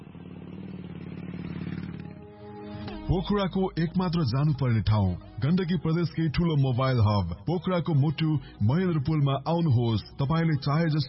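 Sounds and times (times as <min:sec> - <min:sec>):
motorbike engine pulling away: 0:00.0 - 0:03.4
speech: 0:03.1 - 0:11.0.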